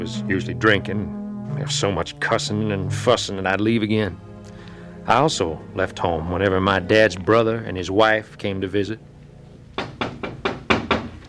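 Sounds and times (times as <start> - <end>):
speech: 0.0 - 4.3, 5.0 - 9.1
knuckles knocking on a house door: 9.8 - 11.2.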